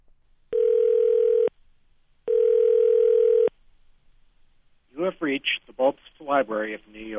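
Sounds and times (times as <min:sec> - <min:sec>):
steady electronic telephone tones on a call to a library: 0:00.5 - 0:01.5, 0:02.3 - 0:03.5
speech: 0:05.2 - 0:07.1.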